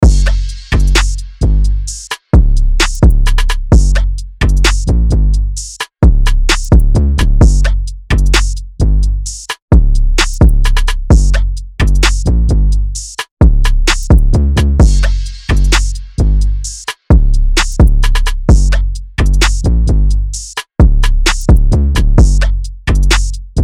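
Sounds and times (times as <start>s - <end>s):
Gbm drum loop: 0.0s - 23.6s.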